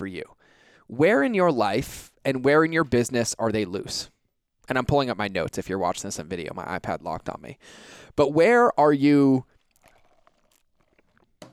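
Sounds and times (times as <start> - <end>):
speech: 0.0 - 9.5
person slurping a sip of oat milk latte: 9.4 - 11.5.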